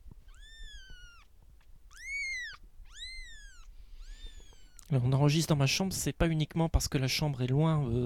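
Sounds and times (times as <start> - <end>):
kitten meowing in a bedroom: 0.2 - 1.3, 1.9 - 4.9
speech: 4.9 - 8.0.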